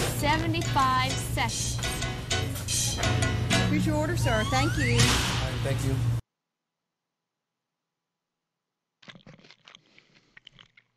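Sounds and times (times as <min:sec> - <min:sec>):
speech: 0:00.2 - 0:01.9, 0:03.0 - 0:06.1
chewing food: 0:09.0 - 0:10.9.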